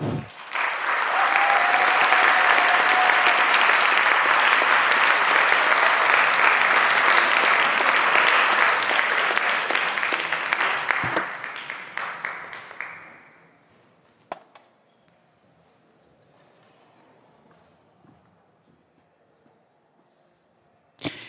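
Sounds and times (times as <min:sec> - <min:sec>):
audience applause: 0:00.0 - 0:13.4.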